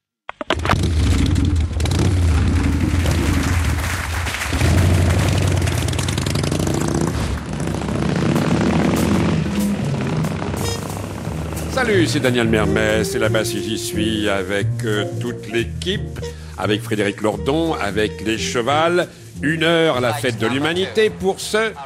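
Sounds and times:
loud engine rumbling and revving: 0.6s - 13.4s
dense roaring backdrop: 0.7s - 12.5s
speech: 11.9s - 21.8s.

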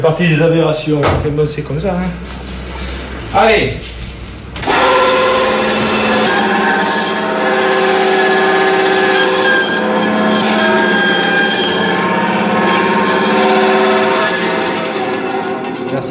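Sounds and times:
speech: 0.0s - 2.5s, 3.3s - 4.0s
saw cutting through veal bone: 4.6s - 15.7s.

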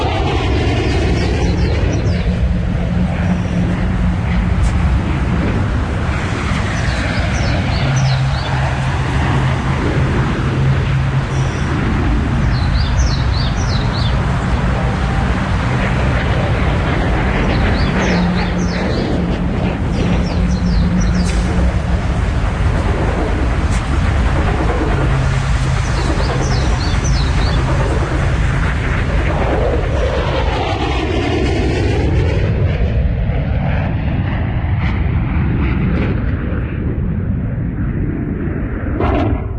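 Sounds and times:
military jet aircraft taking off: 0.0s - 39.5s
small birds chirping faintly: 6.7s - 8.7s, 12.4s - 14.6s, 17.5s - 19.1s, 20.0s - 21.4s, 25.7s - 28.0s.

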